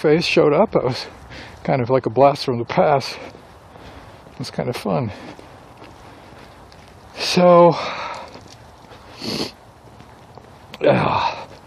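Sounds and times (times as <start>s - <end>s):
speech: 0.0s - 3.4s, 4.4s - 5.4s, 7.2s - 8.1s, 9.2s - 9.6s, 10.8s - 11.4s
person sniffing: 9.0s - 9.6s
person snorting: 9.1s - 9.6s.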